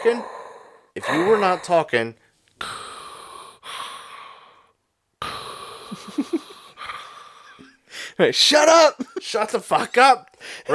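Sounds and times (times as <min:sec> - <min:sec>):
speech: 0:00.0 - 0:00.4, 0:01.0 - 0:02.7, 0:08.2 - 0:10.7
person mimicking heavy raspy breathing: 0:00.0 - 0:08.2, 0:10.3 - 0:10.7.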